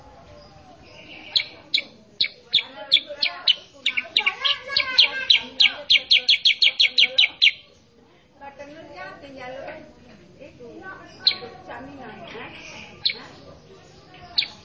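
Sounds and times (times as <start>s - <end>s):
sooty-headed bulbul song: 0.0s - 7.9s, 11.0s - 14.6s.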